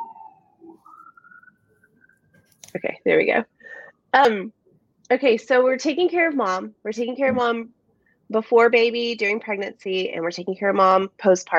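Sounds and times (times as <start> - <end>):
emergency vehicle siren wailing along a street: 0.0 - 2.2
speech: 2.8 - 3.5, 4.1 - 11.5.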